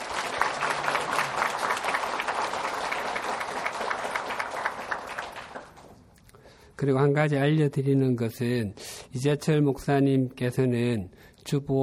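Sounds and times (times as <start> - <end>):
church audience at a worship service applauding: 0.0 - 6.0
speech: 6.8 - 11.8.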